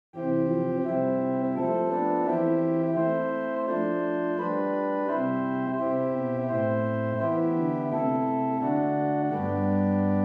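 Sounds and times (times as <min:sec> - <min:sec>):
organ with Lieblich Gedackt 8 and Clear Flute 4 stops at St Annes Moseley: 0:00.2 - 0:10.2.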